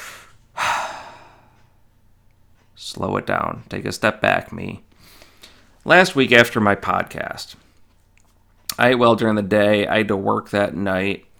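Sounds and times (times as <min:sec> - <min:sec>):
person taking a deep breath: 0:00.0 - 0:01.6, 0:05.0 - 0:05.8
speech: 0:02.8 - 0:04.9, 0:05.8 - 0:07.6, 0:08.8 - 0:11.3.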